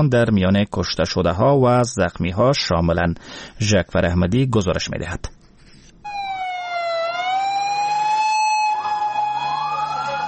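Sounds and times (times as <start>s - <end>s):
speech: 0.0s - 5.4s
ambulance sirens wailing heading to a bomb blast site in Lahore, Pakistan: 6.1s - 10.2s.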